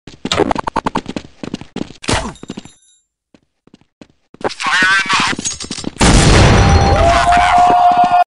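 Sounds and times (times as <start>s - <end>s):
footsteps in a video game: 0.1s - 6.1s, 6.7s - 8.2s.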